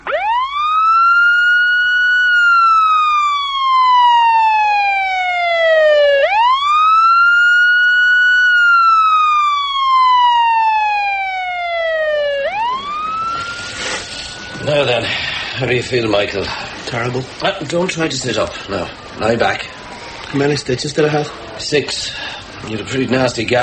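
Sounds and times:
ambulance siren wailing: 0.0 - 17.1, 22.6 - 23.6
speech: 15.8 - 23.6.

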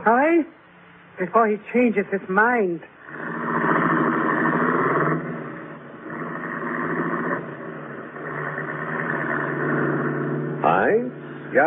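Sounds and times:
speech: 0.0 - 0.6, 1.2 - 2.9, 10.8 - 11.6
car engine as car turns around: 3.1 - 11.6.

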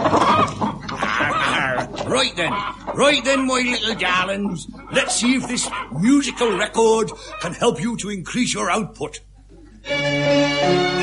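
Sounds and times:
hens clucking on a poultry farm: 0.0 - 7.9
speech: 2.2 - 11.0.

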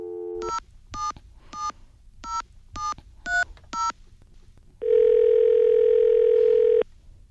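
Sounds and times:
steady telephone dial tone: 4.8 - 6.8.

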